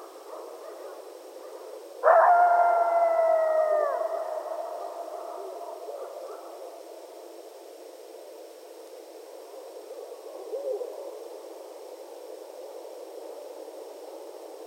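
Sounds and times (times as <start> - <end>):
several coyotes howling at night: 2.0 - 6.9, 10.2 - 11.2.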